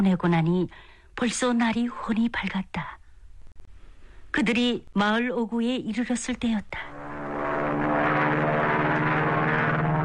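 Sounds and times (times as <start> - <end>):
speech: 0.0 - 3.0, 4.4 - 7.0
propeller airplane droning overhead as it circles: 6.8 - 10.0.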